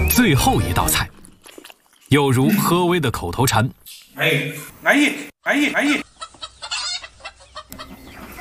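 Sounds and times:
speech: 0.2 - 1.2, 2.1 - 6.1
hen clucking in agitated bursts: 5.8 - 8.4.

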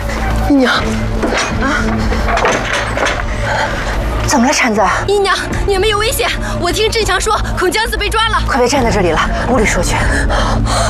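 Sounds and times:
speech: 0.5 - 10.8
wooden door creaking open: 0.8 - 3.6.

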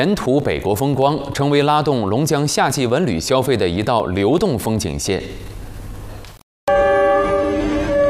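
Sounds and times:
speech: 0.0 - 5.6
loud sustained passenger train horn: 6.7 - 8.0
rumbling rail noise of passenger train: 6.7 - 8.0.

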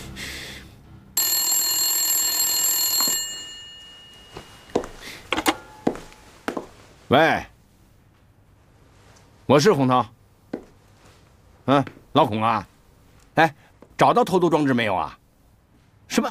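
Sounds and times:
old-style telephone bell ringing: 1.2 - 6.3
speech: 7.1 - 7.5, 9.5 - 10.1, 11.7 - 12.7, 13.4 - 15.2, 16.1 - 16.3.

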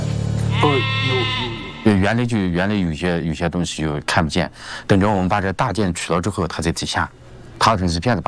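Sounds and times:
sheep bleating: 0.5 - 2.3
speech: 0.6 - 8.2.

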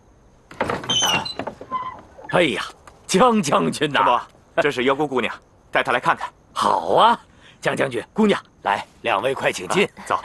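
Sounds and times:
door scraping and rattling while being opened: 0.5 - 2.4
speech: 2.3 - 10.2.

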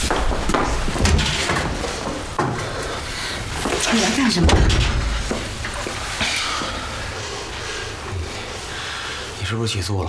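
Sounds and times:
steady broadband hum: 0.0 - 10.0
door opening with clunking scraping knocks: 0.2 - 2.8, 3.7 - 5.8
speech: 3.9 - 4.9, 9.5 - 10.0.

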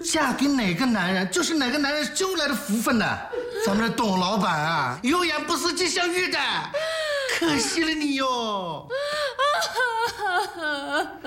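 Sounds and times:
speech: 0.1 - 9.2, 10.5 - 11.2
drunk woman crying in high-pitched sobbing wails: 3.2 - 4.2, 6.8 - 8.2, 8.8 - 11.2
laughter: 3.2 - 4.5.

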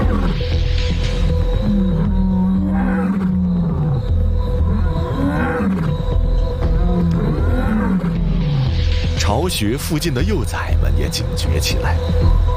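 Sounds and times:
lion pride growling at night: 0.0 - 8.9
speech: 9.5 - 12.4.

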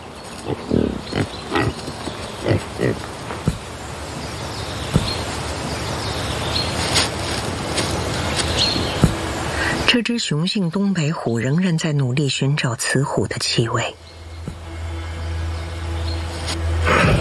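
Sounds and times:
hiss: 0.0 - 11.6, 13.6 - 17.1
wild boar grunting in wild mountain country: 0.4 - 3.6
speech: 2.8 - 3.1, 10.0 - 14.0.

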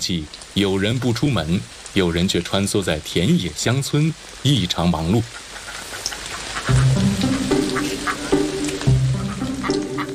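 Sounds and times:
speech: 0.0 - 5.4
dense chorus of ducks quacking and chattering around a rural house: 5.2 - 10.1
steady melodic tune: 6.8 - 10.1.

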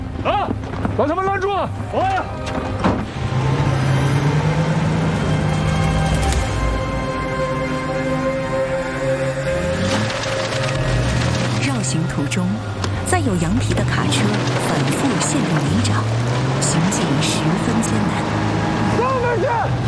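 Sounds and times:
heavy truck engine revving and straining through mud: 0.0 - 19.8
speech: 0.2 - 2.9, 12.2 - 19.8
sharp creaking and cracking bursts: 9.5 - 17.7.

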